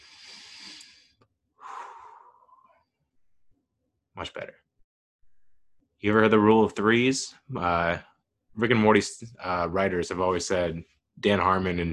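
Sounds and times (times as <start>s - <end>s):
deep breaths taken to catch breath while seated: 0.0s - 2.8s
speech: 4.2s - 4.7s, 6.0s - 11.9s.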